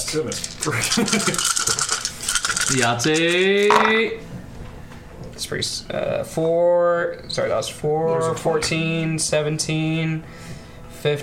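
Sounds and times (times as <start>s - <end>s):
crimson dice rattling and clattering across a table during a tabletop game: 0.0s - 3.9s
speech: 0.1s - 1.9s, 2.7s - 4.3s, 5.4s - 10.4s.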